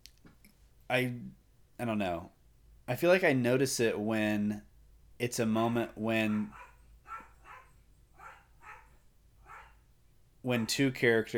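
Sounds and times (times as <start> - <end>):
speech: 0.9 - 6.6, 10.4 - 11.3
household dog barking faintly: 6.2 - 9.8, 10.5 - 10.8.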